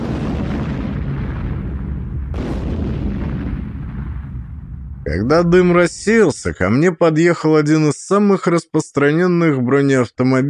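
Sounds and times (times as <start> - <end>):
sharp crack: 0.0 - 6.2
deafening explosion: 0.0 - 6.3
speech: 5.1 - 10.4.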